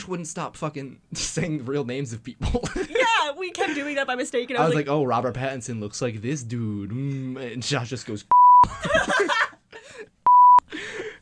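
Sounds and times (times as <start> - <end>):
speech: 0.1 - 10.1
high-pitched censor beep over a spoken name: 8.3 - 8.6, 10.3 - 10.6
chuckling laughter: 8.6 - 10.1.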